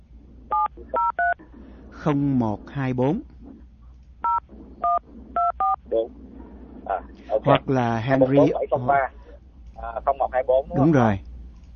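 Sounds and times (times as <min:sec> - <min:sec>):
low continuous rumble: 0:00.0 - 0:11.7
dual-tone phone keypad beeps dialing a shop's number while driving: 0:00.5 - 0:01.4
speech: 0:00.8 - 0:03.3, 0:05.0 - 0:06.3, 0:06.9 - 0:09.2, 0:09.8 - 0:11.3.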